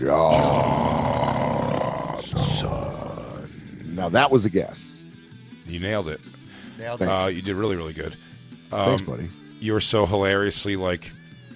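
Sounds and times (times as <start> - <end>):
speech: 0.0 - 0.8, 4.0 - 5.0, 5.7 - 11.2
person imitating a tiger roar with a rasping growl: 0.0 - 4.0.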